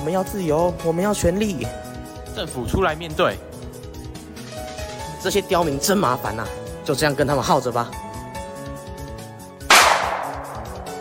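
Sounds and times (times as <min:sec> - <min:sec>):
speech: 0:00.0 - 0:03.5, 0:05.2 - 0:08.0
low steady musical background: 0:00.0 - 0:10.9
gunshot in a dramatized scene of firing on protesters: 0:09.7 - 0:10.9.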